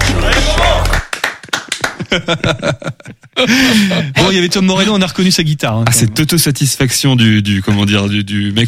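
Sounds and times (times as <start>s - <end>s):
laughter: 0.0s - 1.0s, 1.8s - 4.2s
applause and clapping: 0.0s - 2.1s
speech: 2.1s - 8.6s.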